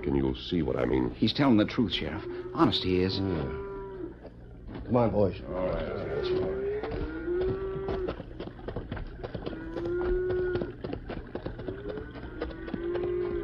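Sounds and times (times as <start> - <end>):
speech: 0.1 - 3.7, 4.9 - 6.6
herd of cattle mooing: 2.0 - 4.3, 5.4 - 8.4, 9.2 - 13.4
cattle hooves clattering and shuffling: 2.6 - 13.4.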